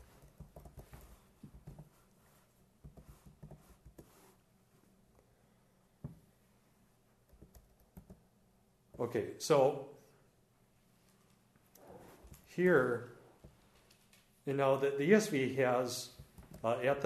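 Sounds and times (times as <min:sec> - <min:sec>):
typing on a computer keyboard set to Greek: 0:00.0 - 0:01.8, 0:07.3 - 0:08.2
speech: 0:09.0 - 0:10.0, 0:12.6 - 0:13.1, 0:14.4 - 0:17.0.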